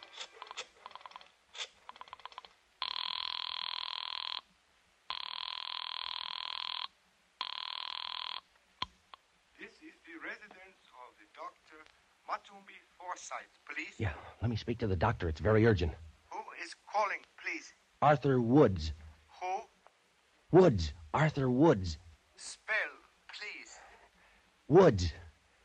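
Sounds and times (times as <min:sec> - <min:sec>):
telephone ringing after a number is dialed: 0:00.0 - 0:01.3, 0:01.9 - 0:04.5, 0:05.1 - 0:08.5
speech: 0:12.5 - 0:16.0, 0:17.0 - 0:19.0, 0:20.5 - 0:22.0, 0:24.7 - 0:25.2.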